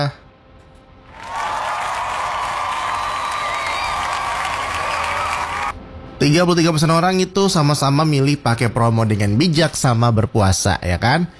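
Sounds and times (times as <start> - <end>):
speech: 0.0 - 0.2, 6.2 - 11.3
crowd applauding: 1.1 - 5.8
people cheering: 1.1 - 5.8.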